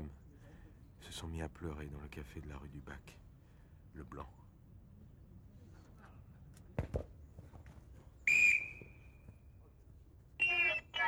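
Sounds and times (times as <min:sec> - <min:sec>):
faint noise: 0:00.0 - 0:11.0
speech: 0:01.1 - 0:03.2, 0:03.9 - 0:04.4
referee's whistle blown for half-time: 0:08.3 - 0:08.9, 0:10.4 - 0:10.9.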